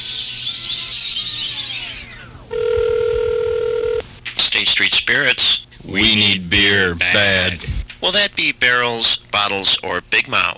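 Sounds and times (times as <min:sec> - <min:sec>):
hissing whirring telephone dialing: 0:00.0 - 0:10.3
loud steady phone tone: 0:02.5 - 0:04.0
speech: 0:04.6 - 0:10.5.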